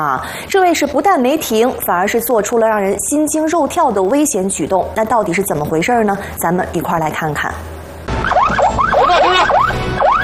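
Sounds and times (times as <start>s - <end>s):
speech: 0.0s - 7.8s
police patrol car siren whooping in Haidian: 8.1s - 10.2s.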